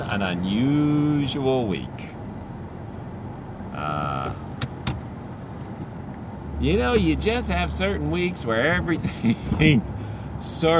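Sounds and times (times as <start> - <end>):
speech: 0.0 - 2.2, 3.8 - 4.4, 6.6 - 10.7
car driving on the road, road and engine noise heard from inside: 0.0 - 10.7.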